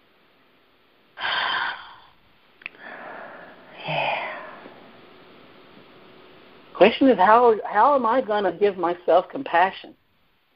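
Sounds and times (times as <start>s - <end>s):
deep breathing in and out: 1.2s - 5.1s
speech: 6.8s - 10.0s.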